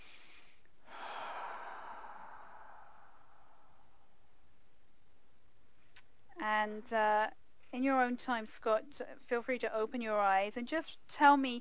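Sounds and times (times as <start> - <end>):
slow comfortable breath with eyes closed during emotional freedom tapping session: 0.0 - 4.6
faint steady hiss: 0.0 - 11.5
speech: 6.7 - 11.5.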